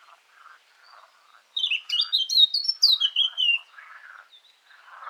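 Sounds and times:
Eurasian blackcap Sylvia atricapilla song: 1.6 - 3.6.

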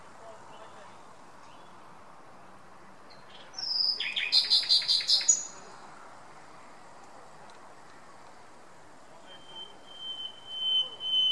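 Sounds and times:
Common nightingale Luscinia megarhynchos song: 0.5 - 1.9, 3.1 - 5.7, 9.3 - 11.3.

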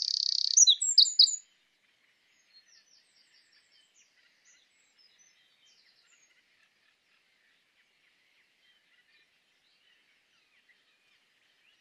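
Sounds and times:
Eurasian wren song, Troglodytes troglodytes: 0.0 - 1.4.

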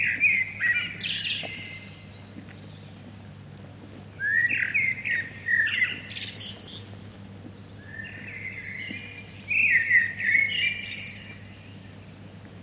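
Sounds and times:
common blackbird Turdus merula fluty warbled song: 0.0 - 3.0, 4.2 - 12.2
steady low hum: 0.0 - 12.6.

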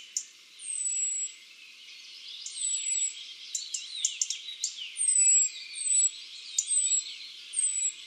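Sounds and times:
European robin Erithacus rubecula singing: 0.0 - 8.0.

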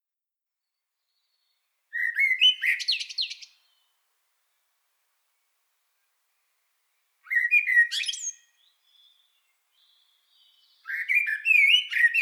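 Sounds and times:
Eurasian blackbird Turdus merula singing whistled phrases with scratchy twittering: 1.2 - 3.9, 7.3 - 12.2.

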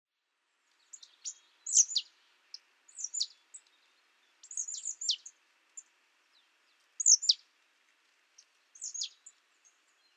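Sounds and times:
marsh tit Poecile palustris calling: 0.9 - 2.1, 3.0 - 3.3, 7.0 - 7.4, 8.8 - 9.2.

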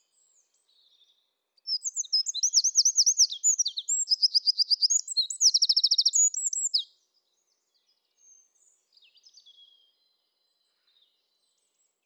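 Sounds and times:
Eurasian wren Troglodytes troglodytes song of high trills and rattling notes: 1.7 - 6.9.

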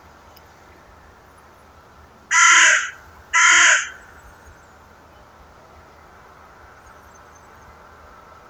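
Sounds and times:
Carrion crow cawing: 2.3 - 4.1.

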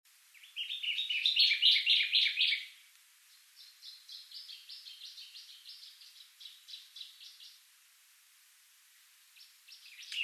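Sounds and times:
Common chaffinch Fringilla coelebs singing trilled phrases: 0.4 - 7.6, 9.4 - 10.2.

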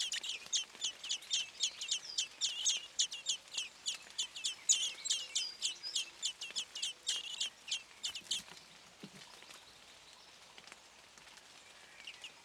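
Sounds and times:
common blackbird Turdus merula chattering with high chinking notes: 0.0 - 8.4.

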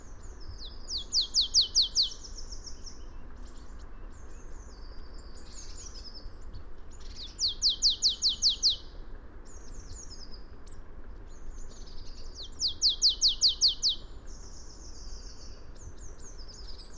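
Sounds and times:
background hiss: 0.0 - 16.9
marsh tit calls: 0.2 - 6.1, 7.0 - 8.8, 11.5 - 16.9.

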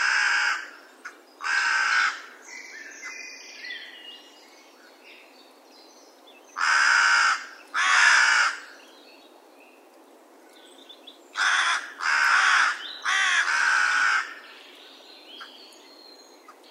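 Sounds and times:
Corvus corone carrion crow cawing: 0.0 - 2.3, 6.6 - 8.7, 11.4 - 14.4.

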